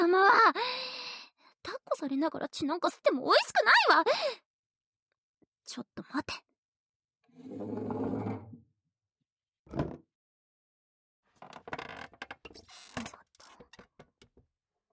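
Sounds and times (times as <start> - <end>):
speech: 2.0 - 4.4, 5.7 - 6.5, 7.4 - 8.5
wooden chair groaning and creaking as someone climbs onto it: 11.4 - 14.3.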